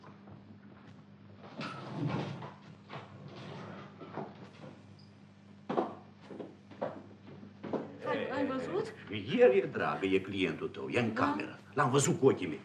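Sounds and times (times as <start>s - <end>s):
room door eased open: 1.5s - 4.1s
speech: 8.6s - 12.6s.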